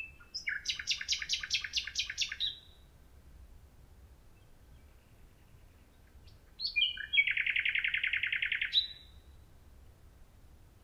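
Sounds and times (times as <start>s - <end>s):
lone male common nightingale singing in the dark: 0.0s - 2.9s, 4.3s - 9.5s.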